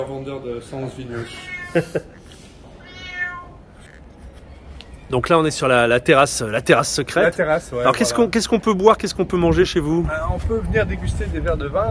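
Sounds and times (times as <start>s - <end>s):
speech: 0.0s - 2.2s, 5.1s - 11.8s
faint murmur: 0.0s - 8.7s
cat meowing in protest: 1.1s - 1.8s, 2.8s - 3.8s.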